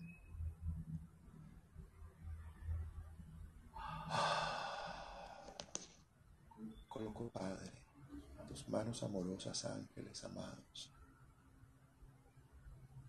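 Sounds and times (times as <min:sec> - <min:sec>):
room hum: 0:00.0 - 0:13.0
deep breath drawn in and released with a sigh: 0:03.8 - 0:05.8
speech: 0:07.2 - 0:07.8, 0:08.6 - 0:11.0.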